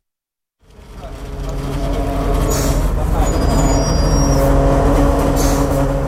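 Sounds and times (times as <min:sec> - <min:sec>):
double-decker passenger bus engine rumbling while pulling up: 0:00.6 - 0:06.0
faint voices: 0:00.8 - 0:04.1.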